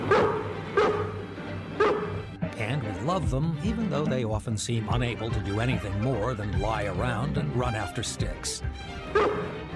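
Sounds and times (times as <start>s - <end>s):
dog barking: 0.0s - 1.2s, 1.8s - 2.2s, 9.2s - 9.5s
speech: 2.7s - 9.5s.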